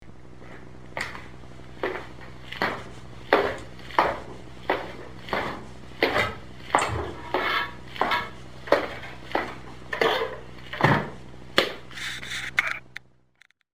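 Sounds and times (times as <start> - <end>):
footsteps going down stairs: 0.1 - 12.5.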